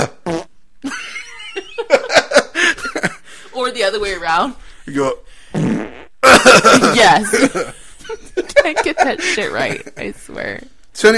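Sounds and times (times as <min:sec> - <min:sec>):
voice mimicking a man's fart with a buzzing raspberry: 0:00.0 - 0:00.6, 0:05.5 - 0:06.4
laughter: 0:00.9 - 0:03.2, 0:06.2 - 0:10.1
speech: 0:04.0 - 0:05.3, 0:06.4 - 0:11.1.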